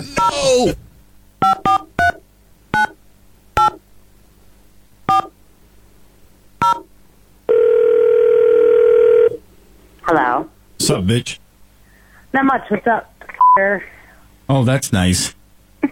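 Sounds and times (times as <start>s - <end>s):
speech: 0.4s - 0.8s, 10.9s - 11.4s, 12.3s - 15.9s
short two-tone telephone keypad beeps: 1.4s - 2.2s, 2.8s - 3.0s, 3.6s - 3.8s, 5.1s - 5.3s, 6.6s - 6.9s
loud steady telephone line tone: 7.5s - 9.4s.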